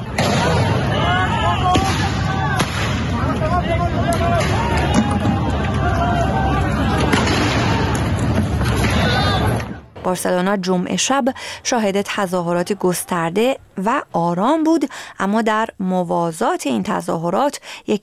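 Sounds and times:
sharp bangs and cracks: 0.0s - 1.0s, 1.6s - 3.4s, 6.8s - 10.1s
crowd of protesters and police shouting in a street clash: 0.0s - 10.0s, 11.8s - 14.0s
speech: 10.1s - 18.0s.

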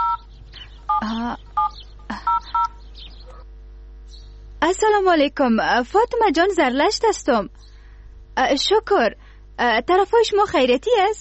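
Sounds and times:
telephone keypad dual-tone beeps as a number is dialed: 0.0s - 0.2s, 1.6s - 2.8s
speech: 4.8s - 7.7s, 8.4s - 11.1s.

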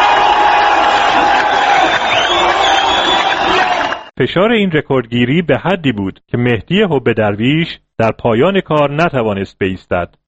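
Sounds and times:
dense crowd of spectators cheering and shouting: 0.0s - 4.1s
scattered whoops from spectators: 0.0s - 4.1s
speech: 4.2s - 10.2s.

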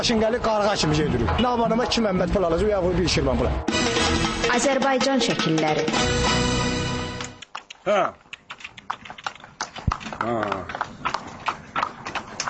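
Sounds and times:
speech: 0.0s - 6.5s, 7.9s - 8.2s, 10.2s - 10.8s
horse hooves clip-clopping on a village road pulling a timber cart: 7.4s - 12.4s.

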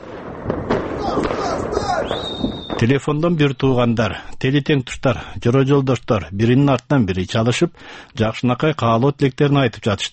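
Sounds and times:
Chinese colorful fireworks cracking and popping late at night: 0.0s - 3.5s
dense rumbling background of Chinese fireworks: 0.0s - 5.6s
speech: 1.9s - 10.1s.

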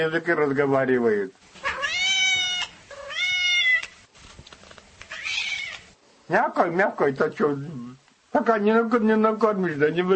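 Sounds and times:
speech: 0.0s - 1.6s, 6.3s - 10.1s
cat meowing: 1.6s - 4.0s, 5.1s - 6.0s.

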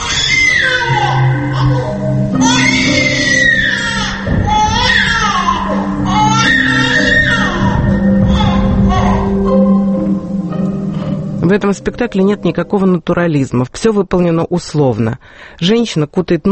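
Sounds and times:
baby wailing during a stage play: 0.0s - 9.9s
steady low hum: 1.5s - 13.1s
speech: 11.5s - 16.5s.

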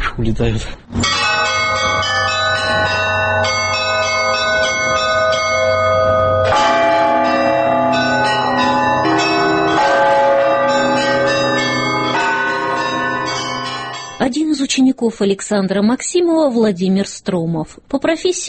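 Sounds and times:
speech: 0.2s - 1.2s, 14.3s - 18.4s
several church bells pealing from a bell tower: 1.0s - 14.4s.

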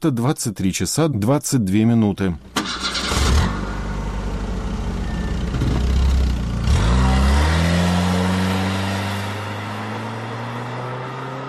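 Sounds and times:
speech: 0.0s - 2.8s
car engine starting and revving: 2.4s - 11.4s.

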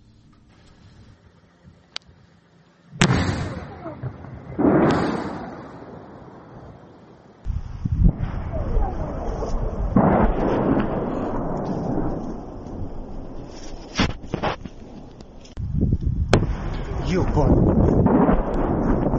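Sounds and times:
steady wind-like rumble: 0.0s - 19.1s
heavy explosive booms in darkness, likely air defence fire: 3.0s - 6.8s, 7.5s - 15.0s, 15.8s - 19.1s.

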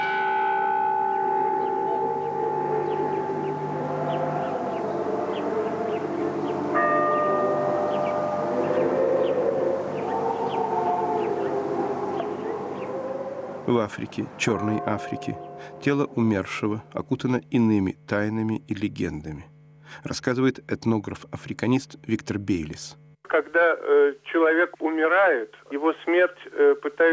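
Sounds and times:
church bells pealing: 0.0s - 17.2s
speech: 13.7s - 27.1s.

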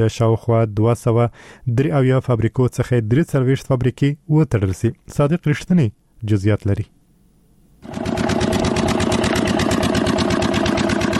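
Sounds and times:
speech: 0.0s - 7.0s
diesel generator powering a pipe-making factory: 7.8s - 11.1s.

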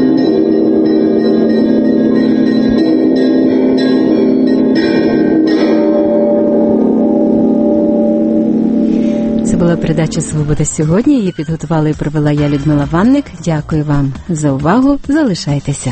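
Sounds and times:
large cathedral church bell ringing: 0.0s - 11.1s
speech: 9.7s - 15.9s.

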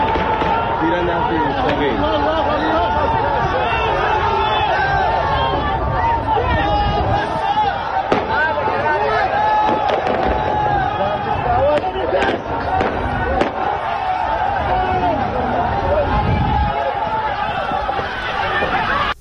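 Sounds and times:
gunshots during a street protest in Zahedan: 0.0s - 0.8s, 8.1s - 8.6s, 9.6s - 10.6s, 11.8s - 13.7s
loud unbroken crowd hubbub and shouting at a street protest: 0.0s - 19.2s.

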